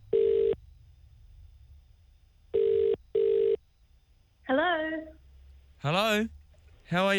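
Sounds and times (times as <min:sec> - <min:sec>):
faint low hum: 0:00.0 - 0:07.1
phone line buzzing ringback tone: 0:00.1 - 0:00.6, 0:02.6 - 0:03.6
woman speaking on a phone call: 0:04.5 - 0:05.2
speech: 0:05.8 - 0:07.1.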